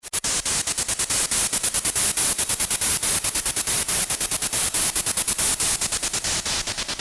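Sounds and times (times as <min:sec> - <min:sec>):
delayed pink noise: 0:00.0 - 0:06.9.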